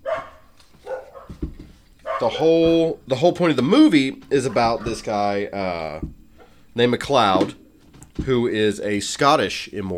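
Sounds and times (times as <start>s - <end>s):
dogs barking: 0.0s - 2.5s
speech: 2.2s - 6.2s, 6.8s - 7.6s, 8.2s - 9.9s.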